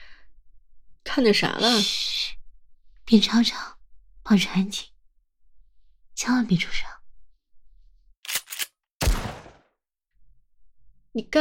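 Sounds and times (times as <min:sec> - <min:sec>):
speech: 0:01.1 - 0:02.2, 0:03.1 - 0:04.9, 0:06.2 - 0:07.0, 0:11.2 - 0:11.3
gunshots fired outdoors in the wild: 0:08.5 - 0:09.7.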